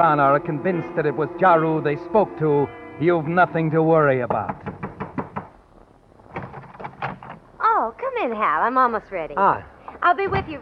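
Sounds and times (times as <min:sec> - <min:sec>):
speech: 0:00.0 - 0:04.7, 0:08.3 - 0:10.5
knocking on an apartment door: 0:04.3 - 0:05.5.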